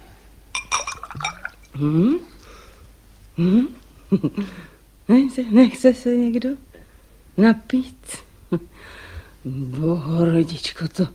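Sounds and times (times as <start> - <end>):
glass knocked and set down on a hard surface, clinking: 0.5 - 1.8
speech: 1.8 - 2.3, 3.4 - 6.7, 7.4 - 11.1.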